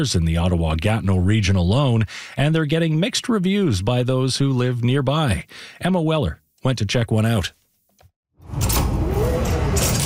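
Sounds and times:
speech: 0.0 - 7.6
mini grocery store door unlocking with a phone tap, mechanical whirring and sliding: 8.4 - 10.0.

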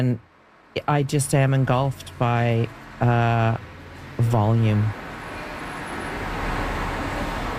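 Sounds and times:
speech: 0.0 - 5.0
traffic roar of cars passing on a busy road: 0.0 - 7.5.

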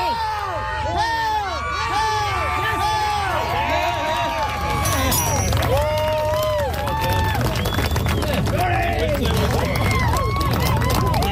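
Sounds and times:
crowd shouting and cheering as a woman lifts the Dinnie Stones in Scotland: 0.0 - 11.3.

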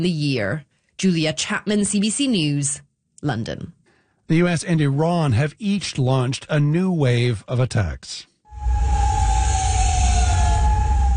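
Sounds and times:
speech: 0.0 - 8.8
air raid sirens wailing in Kuwait City during missile and drone attacks: 8.5 - 11.1
low rumble of city noise in Kuwait City: 8.5 - 11.1.

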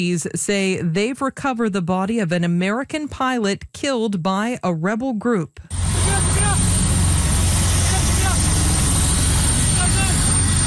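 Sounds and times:
speech: 0.0 - 5.8
military helicopter rotor drone descending onto a hill in Papua: 5.7 - 10.6.

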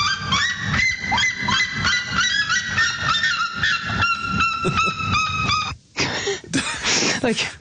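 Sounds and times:
red-legged seriema calling: 0.0 - 5.8
speech: 7.2 - 7.6.

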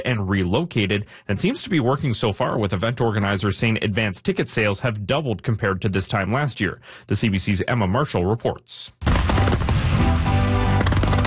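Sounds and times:
speech: 0.0 - 9.7
fireworks at a multicultural festival in a park: 9.0 - 11.2.

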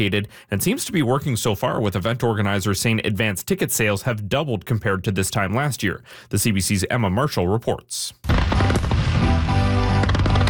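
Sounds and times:
speech: 0.0 - 9.5
fireworks crackling and popping at an outdoor multicultural festival in a park: 8.2 - 10.4.

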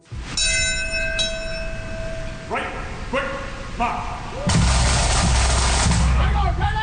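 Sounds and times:
ceremonial bell ringing: 0.2 - 4.3
low rumbling background: 1.2 - 6.8
speech: 3.8 - 4.6.

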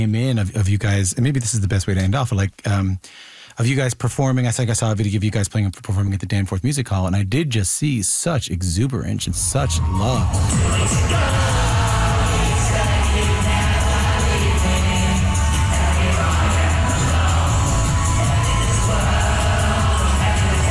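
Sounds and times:
speech: 0.0 - 11.7
dense concert crowd roaring and cheering: 9.3 - 20.6
pounding live music: 9.3 - 20.6.

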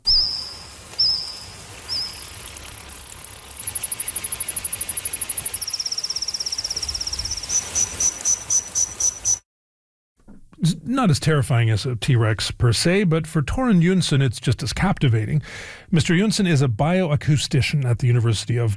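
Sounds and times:
recreated Jurassic-era insect song with cricket-like chirps: 0.0 - 9.4
speech: 10.9 - 18.7.

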